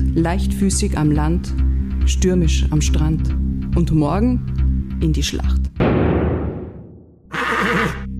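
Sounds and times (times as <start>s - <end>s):
speech: 0.2s - 5.7s
horse neighing: 7.3s - 8.1s
horse snorting: 7.3s - 8.1s.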